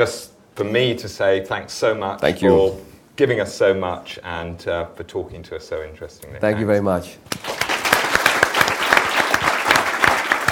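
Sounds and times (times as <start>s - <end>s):
speech: 0.0s - 7.5s
audience applause after an author's talk at a book event: 7.3s - 10.5s.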